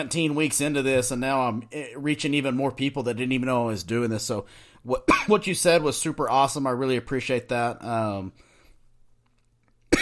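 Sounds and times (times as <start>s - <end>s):
speech: 0.0s - 8.5s
person coughing: 5.1s - 5.4s.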